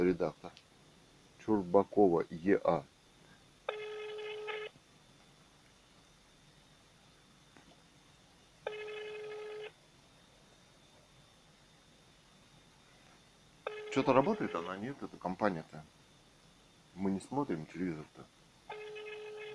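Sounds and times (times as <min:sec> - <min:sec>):
low hiss of telephone line noise: 0:00.0 - 0:19.5
speech: 0:00.1 - 0:00.6, 0:01.5 - 0:02.9, 0:14.0 - 0:16.0, 0:17.0 - 0:18.4
telephone ringback tone: 0:03.7 - 0:04.7, 0:08.7 - 0:09.7, 0:13.7 - 0:14.8, 0:18.7 - 0:19.5.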